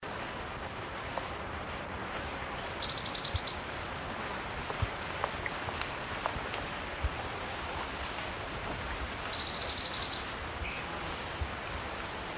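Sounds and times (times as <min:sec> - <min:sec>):
hissy background noise: 0:00.0 - 0:12.3
Spotted Antbird Hylophylax naevioides calling with rattling bursts: 0:02.8 - 0:03.7, 0:09.3 - 0:10.8.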